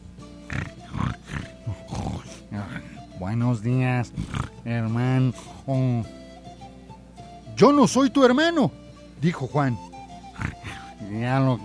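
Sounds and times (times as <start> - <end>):
piglet grunting: 0.4 - 3.1, 4.1 - 4.7, 10.2 - 11.0
speech: 3.2 - 6.2, 7.6 - 9.9, 11.1 - 11.6.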